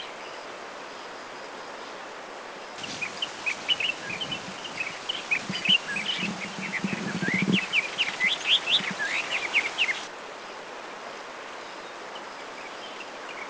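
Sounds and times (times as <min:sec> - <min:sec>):
Styan's bulbul in Taiwan: 0:02.8 - 0:10.1.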